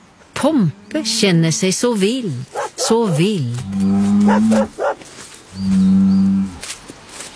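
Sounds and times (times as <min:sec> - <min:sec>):
speech: 0:00.4 - 0:04.9, 0:05.6 - 0:06.2
bull mooing: 0:02.5 - 0:05.0, 0:05.6 - 0:06.6.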